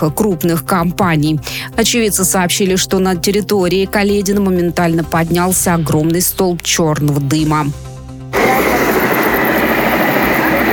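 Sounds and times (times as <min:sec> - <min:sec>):
speech: 0:00.0 - 0:07.9
aircraft taking off near a burning tire-recycling warehouse: 0:08.3 - 0:10.7.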